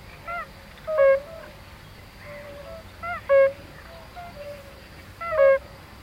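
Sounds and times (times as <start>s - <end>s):
European fire-bellied toad chorus, Bombina bombina: 0.3s - 1.6s, 2.2s - 5.7s.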